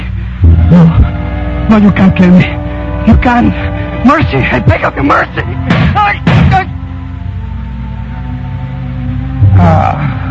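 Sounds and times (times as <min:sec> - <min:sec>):
speech: 0:00.7 - 0:06.3, 0:09.6 - 0:09.8
gunshot in a radio drama: 0:05.7 - 0:06.6.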